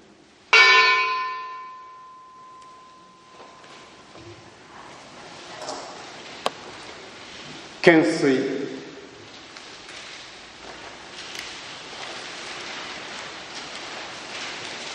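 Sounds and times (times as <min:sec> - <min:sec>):
large bell struck, deep ringing tone: 0:00.5 - 0:04.1
speech: 0:07.8 - 0:08.6.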